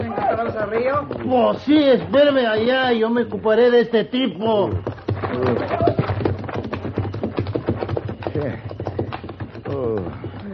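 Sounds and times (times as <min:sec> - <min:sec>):
horses' hooves clip-clopping: 0:00.0 - 0:10.5
speech: 0:00.6 - 0:05.9, 0:08.4 - 0:08.7.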